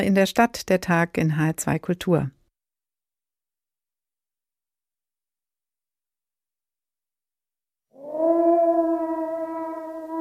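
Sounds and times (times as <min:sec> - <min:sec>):
speech: 0:00.0 - 0:02.4
grey wolf howl: 0:08.0 - 0:10.1.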